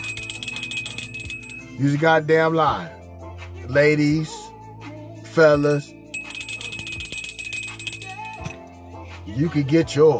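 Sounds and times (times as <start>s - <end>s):
hand bell called a truth bell ringing rapidly: 0.0s - 1.8s, 5.6s - 8.7s
speech: 1.8s - 3.0s, 3.7s - 4.4s, 5.4s - 6.0s, 9.4s - 10.1s.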